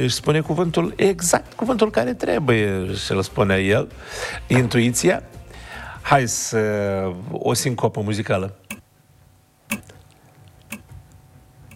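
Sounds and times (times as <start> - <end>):
speech: 0.0 - 5.4, 6.0 - 8.6
low hum: 0.0 - 11.7
crisp ticks: 9.7 - 11.7.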